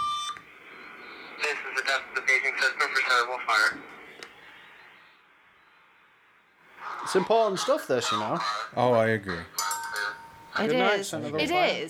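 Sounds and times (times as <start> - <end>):
radio static hiss: 0.4 - 8.3
garbled tinny voice chatter over a radio: 1.3 - 4.2
speech: 1.5 - 4.0, 7.1 - 9.6, 10.6 - 11.8.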